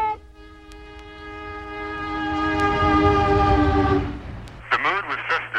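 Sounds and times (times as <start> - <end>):
horn of a passenger train pulling away from a terminal in Oakland California: 0.1 - 4.5
rumble of a passenger train pulling away from a terminal: 0.2 - 5.5.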